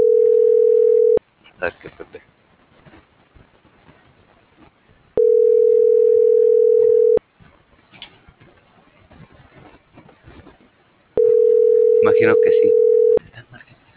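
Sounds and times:
telephone ringback tone on an unanswered call: 0:00.0 - 0:01.2, 0:05.2 - 0:07.2, 0:11.2 - 0:13.2
faint low noise: 0:00.0 - 0:13.9
speech: 0:01.6 - 0:02.0.

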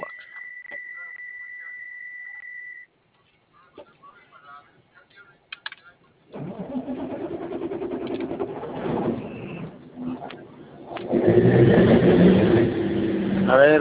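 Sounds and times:
vehicle engine starting and rumbling: 0:06.3 - 0:13.7.

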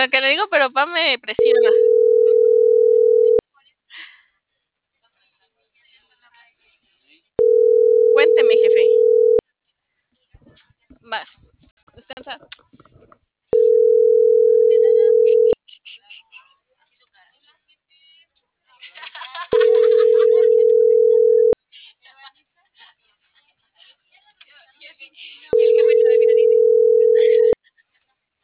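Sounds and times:
speech: 0:00.0 - 0:02.0, 0:11.1 - 0:11.4, 0:12.1 - 0:12.8
unanswered phone call ringback tone: 0:01.4 - 0:03.4, 0:07.4 - 0:09.4, 0:13.6 - 0:15.6, 0:19.5 - 0:21.6, 0:25.5 - 0:27.6
laughter: 0:18.8 - 0:20.9, 0:27.1 - 0:28.2.

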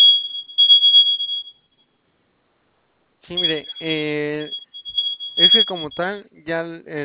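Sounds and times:
smoke detector sounding from low battery: 0:00.0 - 0:01.8, 0:03.3 - 0:06.2
speech: 0:03.3 - 0:04.6, 0:05.4 - 0:07.0.

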